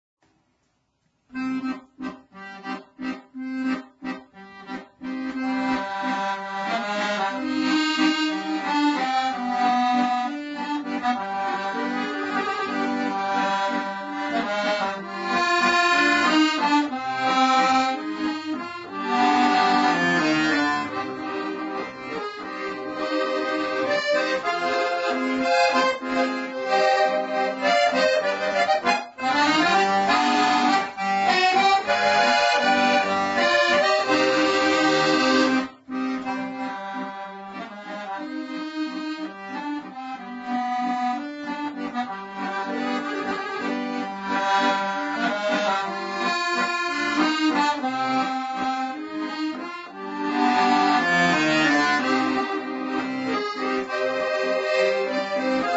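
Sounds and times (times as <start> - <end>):
accordion playing a waltz: 1.2 - 55.7.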